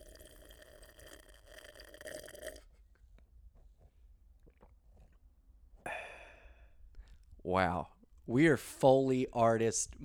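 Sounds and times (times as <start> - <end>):
slurping sip of a liquid: 0.0 - 2.8
short satisfied breathy ah: 5.8 - 6.8
speech: 7.4 - 10.0.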